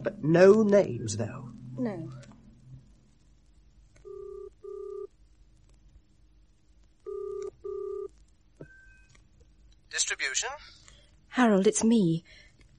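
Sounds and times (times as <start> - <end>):
speech: 0.0 - 2.3, 9.9 - 12.7
telephone line ringing in double pattern through a receiver: 4.0 - 5.1, 7.1 - 9.1.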